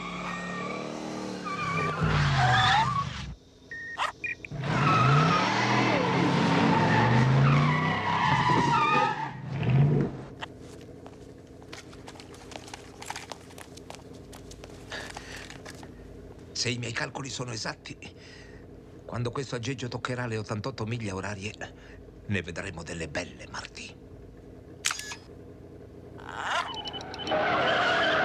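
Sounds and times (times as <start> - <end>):
car engine roaring and accelerating: 0.0 - 3.4, 4.2 - 16.6, 24.0 - 28.2
car tires screeching and skidding: 0.0 - 3.4, 4.0 - 16.7, 25.5 - 28.2
speech: 16.6 - 18.5, 19.1 - 23.8.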